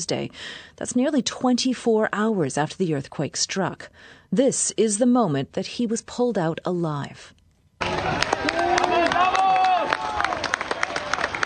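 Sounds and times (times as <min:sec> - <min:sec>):
speech: 0:00.0 - 0:08.6
excited voices: 0:07.8 - 0:11.2
crowd cheering and shouting in celebration: 0:07.8 - 0:11.4
people clapping: 0:07.8 - 0:11.4.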